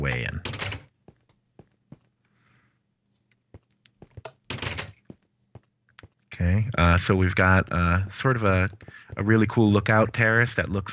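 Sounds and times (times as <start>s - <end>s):
speech: 0.0s - 0.5s, 6.4s - 10.9s
video game stadium door opening and shutting with heavy thunks: 0.4s - 0.9s, 4.2s - 5.0s.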